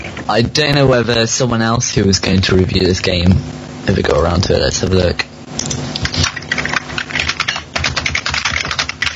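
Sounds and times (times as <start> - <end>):
speech: 0.3 - 5.3
typing on a computer keyboard: 6.0 - 9.1.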